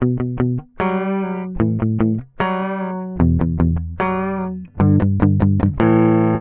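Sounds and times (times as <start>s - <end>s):
dry guitar: 0.0s - 6.3s.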